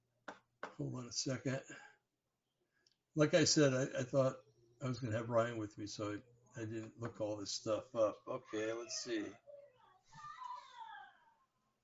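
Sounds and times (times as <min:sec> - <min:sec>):
speech: 0:00.8 - 0:01.9, 0:03.2 - 0:09.4
children squealing and chattering: 0:08.3 - 0:11.4.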